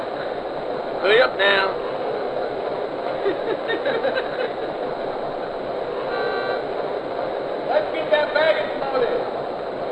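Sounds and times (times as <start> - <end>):
rumble and clatter of a busy rail platform: 0.0 - 9.9
speech: 1.0 - 1.9, 3.2 - 5.1
laughter: 3.0 - 5.0
passenger train horn as train departs: 6.0 - 6.7.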